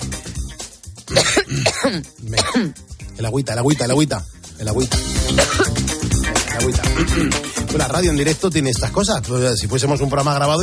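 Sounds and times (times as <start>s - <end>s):
person coughing harshly: 1.1s - 2.8s, 5.2s - 5.8s, 6.8s - 7.6s
throat clearing: 1.1s - 2.8s, 5.3s - 5.8s, 6.9s - 7.6s
speech: 1.8s - 6.0s, 6.6s - 10.6s.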